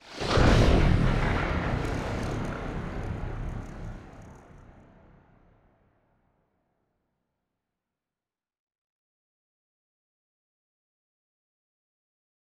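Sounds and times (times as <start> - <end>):
corvette ship moving: 0.2 - 4.9.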